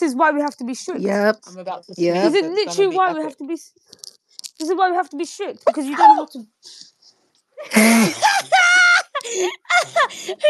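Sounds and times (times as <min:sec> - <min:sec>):
speech: 0:00.1 - 0:06.9, 0:07.6 - 0:10.4
loud exaggerated sneeze: 0:07.6 - 0:08.7
laughter: 0:07.6 - 0:10.4.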